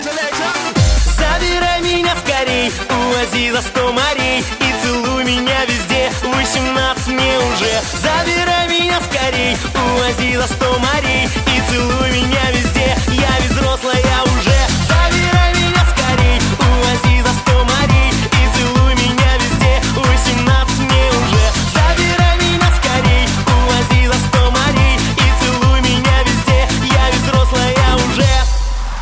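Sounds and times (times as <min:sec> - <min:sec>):
pop music: 0:00.0 - 0:29.0.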